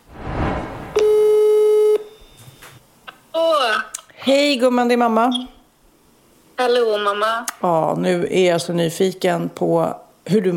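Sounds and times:
faint phone line noise: 0.0s - 2.4s
telephone ringback tone from an outgoing phone call: 1.0s - 2.4s
speech: 4.2s - 5.6s, 6.6s - 10.5s.

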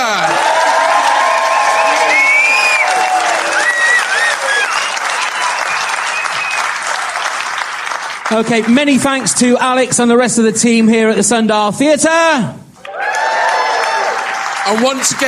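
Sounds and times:
large audience clapping: 0.0s - 10.2s, 12.8s - 15.2s
sharp whistles from audience: 1.8s - 2.9s, 3.6s - 6.8s
speech: 8.3s - 12.6s, 14.6s - 15.2s.

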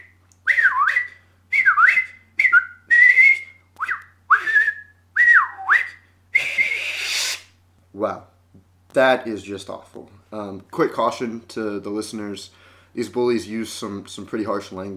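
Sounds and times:
person whistling swooping phrases: 0.0s - 7.5s
speech: 8.0s - 8.3s, 9.0s - 14.9s.

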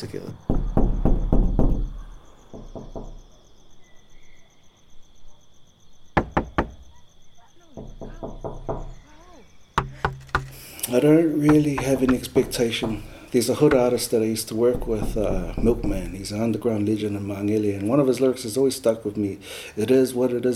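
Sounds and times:
speech: 0.0s - 0.5s, 10.9s - 20.5s
knocking on a door: 0.4s - 3.3s, 6.2s - 7.0s, 7.6s - 10.6s, 11.3s - 16.6s.

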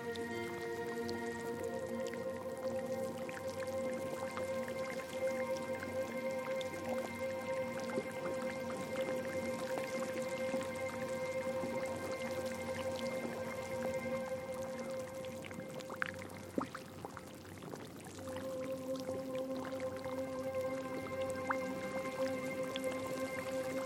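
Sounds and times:
sustained steady relaxing tones: 0.0s - 16.6s, 18.2s - 23.8s
bath water drips and small splashes: 0.0s - 23.8s.

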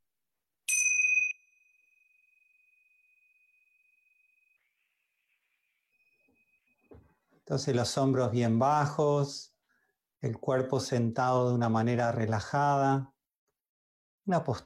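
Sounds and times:
small bells ringing: 0.7s - 4.3s
speech: 7.5s - 9.5s, 10.2s - 13.1s, 14.3s - 14.6s.

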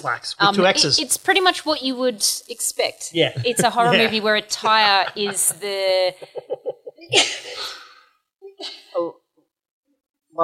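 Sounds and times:
speech: 0.0s - 6.5s, 7.1s - 7.8s, 8.6s - 9.2s
laughter: 3.2s - 7.8s
person snorting: 6.2s - 8.9s
person sneezing: 7.1s - 8.0s
sharp inhale: 7.4s - 8.2s.

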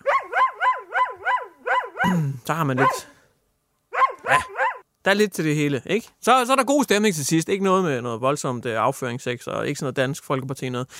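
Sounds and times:
dog barking with high yappy calls: 0.0s - 2.2s, 2.8s - 3.2s, 3.9s - 4.8s
speech: 2.0s - 3.1s, 4.3s - 10.9s.

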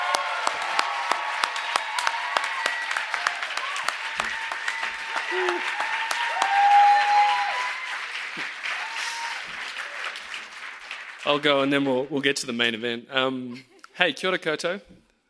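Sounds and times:
crowd applauding: 0.0s - 12.3s
whistles: 4.2s - 7.8s
speech: 11.3s - 15.0s.

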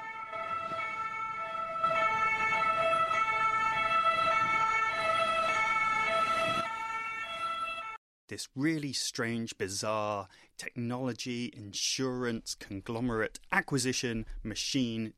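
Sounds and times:
ambulance siren wailing: 0.0s - 8.0s
speech: 8.3s - 15.1s.

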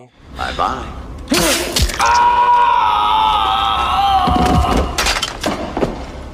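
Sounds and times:
speech: 0.0s - 2.3s
man screaming while falling in a film scene: 2.0s - 5.0s.

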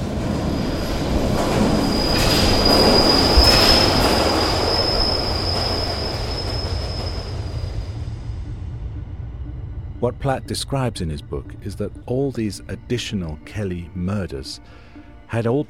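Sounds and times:
underground train rumbling past a station platform: 0.0s - 15.6s
high metallic wheel squeal of underground train: 0.4s - 8.0s
speech: 10.0s - 15.6s.

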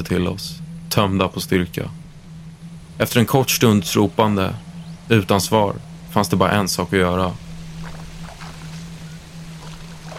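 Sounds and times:
speech: 0.0s - 2.0s, 3.0s - 7.4s
steady low hum: 0.0s - 10.1s
water splashing and sloshing: 7.4s - 10.1s.

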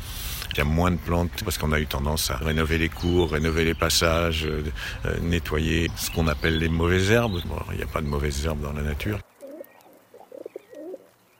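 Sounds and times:
speech: 0.6s - 9.3s
feral rock pigeon cooing: 9.1s - 11.1s.

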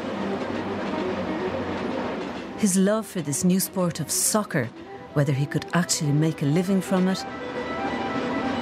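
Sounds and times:
train rumbling along railway tracks: 0.0s - 8.6s
speech: 2.6s - 7.7s.

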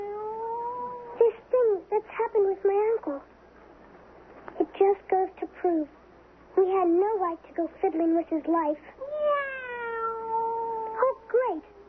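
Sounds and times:
cat meowing: 0.0s - 1.2s, 9.0s - 11.3s
speech: 2.1s - 3.4s, 4.8s - 6.0s, 6.6s - 9.0s.

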